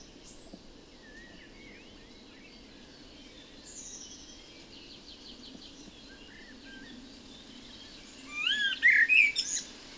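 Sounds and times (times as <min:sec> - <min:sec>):
Common blackbird Turdus merula song with fluted whistles and high twitter: 0:00.0 - 0:09.8.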